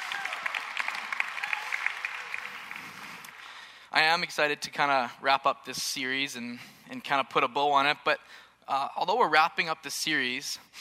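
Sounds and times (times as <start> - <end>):
room full of people applauding: 0.0 - 3.7
speech: 3.9 - 10.7.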